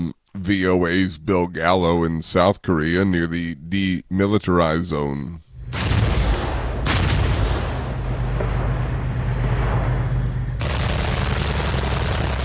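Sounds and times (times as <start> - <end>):
speech: 0.0 - 5.9
rolling roaring rumble of weapons fire on mountainside: 5.5 - 12.4
heavy military weapons fire in live-fire drill pounding a mountainside: 5.6 - 12.4.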